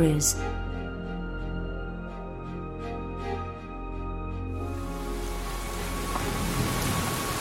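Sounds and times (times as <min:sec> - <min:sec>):
speech: 0:00.0 - 0:00.6
soft musical drone: 0:00.0 - 0:07.3
rain falling densely: 0:04.6 - 0:07.3.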